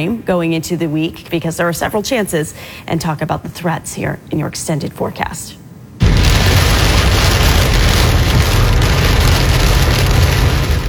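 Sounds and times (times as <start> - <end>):
speech: 0.0 - 5.6
heavy rain pounding on a car: 6.0 - 10.8.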